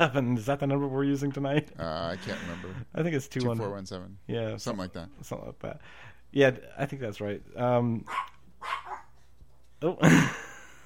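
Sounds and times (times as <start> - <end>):
speech: 0.0 - 8.8, 9.8 - 10.5
faint low hum: 0.0 - 10.8
dog barking: 8.1 - 9.2.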